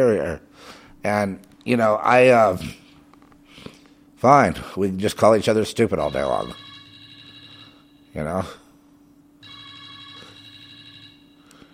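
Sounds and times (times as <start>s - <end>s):
speech: 0.0s - 2.8s, 4.2s - 6.6s, 8.2s - 8.6s
low hum: 0.0s - 11.7s
telephone ringing with a bright electronic trill: 6.0s - 8.2s, 9.4s - 11.7s.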